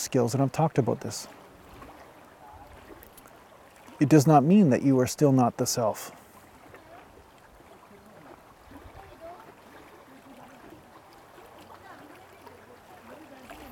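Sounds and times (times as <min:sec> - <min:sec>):
moving water rushing: 0:00.0 - 0:13.7
speech: 0:00.1 - 0:01.5, 0:04.0 - 0:06.2
faint murmuring voices: 0:07.8 - 0:13.7.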